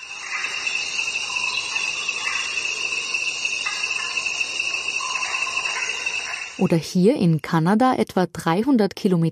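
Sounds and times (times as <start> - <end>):
Amazon rainforest insects buzzing and trilling: 0.0 - 7.2
speech: 6.6 - 9.2.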